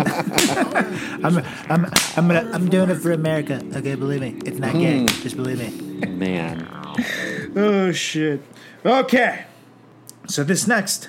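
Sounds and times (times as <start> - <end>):
person chuckling: 0.0 - 2.8, 4.8 - 7.6
speech: 0.8 - 9.5, 10.3 - 11.0
short voiced groans: 0.9 - 3.8, 4.4 - 7.8
whip crack or slap: 2.0 - 2.2, 5.1 - 5.3.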